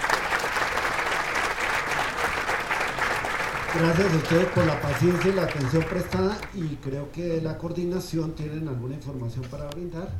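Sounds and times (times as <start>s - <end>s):
audience applause for panelists: 0.0s - 6.8s
speech: 3.7s - 10.1s.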